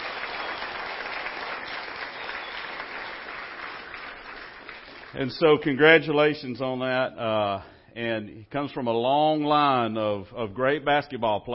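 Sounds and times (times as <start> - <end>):
large indoor crowd applauding: 0.0 - 5.3
speech: 5.2 - 11.5.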